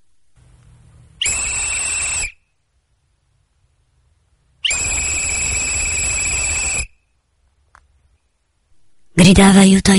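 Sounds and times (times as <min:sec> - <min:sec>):
shrill whistle blasts: 0:01.2 - 0:02.5, 0:04.6 - 0:07.1
speech: 0:09.2 - 0:09.9.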